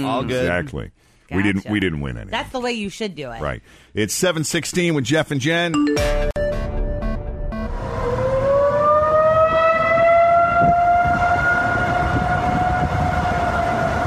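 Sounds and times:
speech: 0.0 - 6.6
city emergency warning sirens giving an air-raid wail at night: 7.5 - 14.0.

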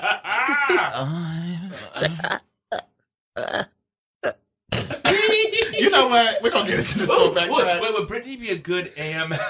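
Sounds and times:
laughter: 0.0 - 1.1, 4.8 - 8.0, 9.2 - 9.4
speech: 0.7 - 2.4, 6.2 - 9.4
person burping: 0.8 - 5.1.

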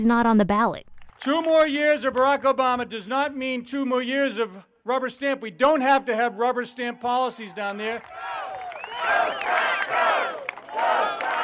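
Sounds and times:
speech: 0.0 - 8.4
large crowd at an outdoor campaign rally cheering and shouting: 6.5 - 11.4.

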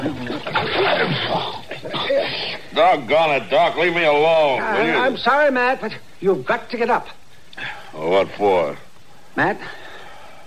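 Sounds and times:
water splashed on a man's face: 0.0 - 1.9
speech: 0.0 - 9.8.

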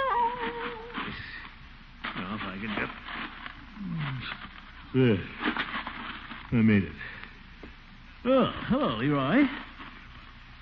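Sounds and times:
cat caterwauling: 0.0 - 1.0
speech: 4.9 - 5.4, 6.5 - 7.0, 8.2 - 9.6.

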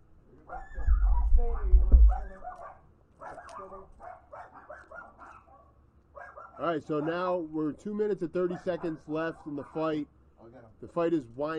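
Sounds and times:
dogs barking and yipping: 0.4 - 7.4, 8.4 - 10.0
speech: 6.6 - 11.5.

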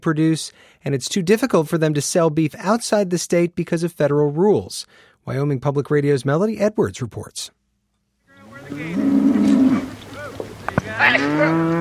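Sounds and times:
speech: 0.0 - 7.6, 8.7 - 9.2, 11.0 - 11.7
herd of cattle mooing during a cattle drive on a ranch in southern Wyoming: 8.4 - 10.0, 10.9 - 11.7.

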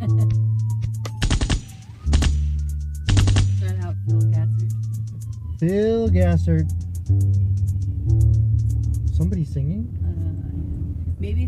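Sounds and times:
faint wavering siren-like tone: 0.0 - 7.1
low hum: 0.0 - 11.4
rapid gunfire in a neighborhood: 1.2 - 3.7
speech: 5.6 - 7.4, 9.2 - 10.4, 11.2 - 11.4.

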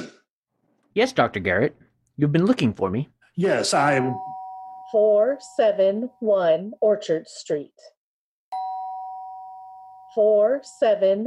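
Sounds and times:
speech: 1.0 - 4.3, 4.9 - 8.0, 10.1 - 11.2
doorbell ringing: 3.9 - 6.4, 8.5 - 11.2.

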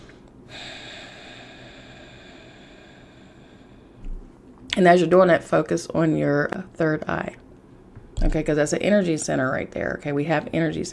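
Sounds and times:
long deep breath drawn slowly: 0.0 - 4.0
speech: 4.8 - 7.4, 8.2 - 10.9.

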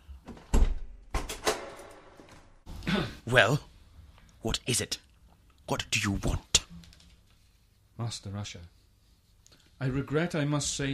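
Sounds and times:
heavy door opening with a low thud: 0.3 - 2.5
speech: 3.3 - 3.7, 4.4 - 5.0, 5.7 - 6.8, 8.0 - 8.8, 9.8 - 10.9.

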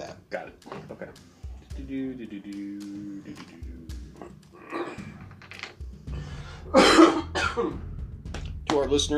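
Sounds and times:
speech: 0.3 - 4.8, 7.6 - 7.9, 8.8 - 9.1
harsh coughing: 6.6 - 7.8.

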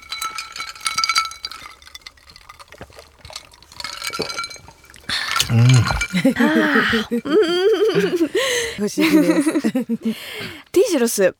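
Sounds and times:
drinking glasses clinking in a toast: 0.0 - 9.7
rice shochu being poured and swirled: 0.2 - 7.1
laughter: 5.5 - 10.5
speech: 5.5 - 11.3.

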